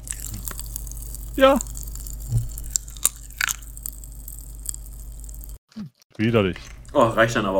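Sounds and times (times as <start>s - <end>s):
low steady hum: 0.0s - 5.6s
wet mouth sounds: 0.0s - 6.0s
biting and chewing very sweet crunchy candy: 0.0s - 6.7s
speech: 1.4s - 1.8s, 6.2s - 7.5s.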